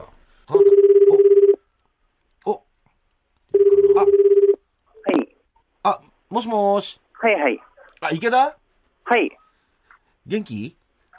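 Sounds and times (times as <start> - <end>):
warbling ringback tone on an outgoing phone call: 0.6 - 1.6, 3.6 - 4.6
speech: 5.8 - 9.4, 10.3 - 10.8.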